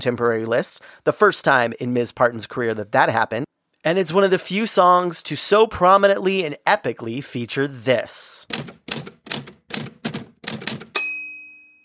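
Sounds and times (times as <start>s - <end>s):
speech: 0.0s - 9.0s
typewriter keystrokes: 8.5s - 11.0s
typewriter carriage-return bell ding: 10.9s - 11.8s.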